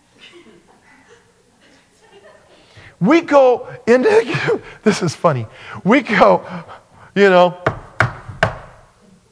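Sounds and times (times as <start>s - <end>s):
laughter: 0.2s - 2.8s
speech: 3.0s - 7.6s
sharp knocks on a house door: 7.6s - 8.8s.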